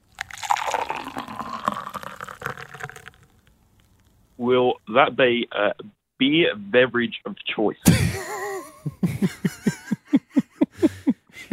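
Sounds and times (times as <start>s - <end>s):
coffee being poured: 0.0s - 4.0s
speech: 4.4s - 8.3s, 8.9s - 9.7s
laughter: 7.8s - 11.5s.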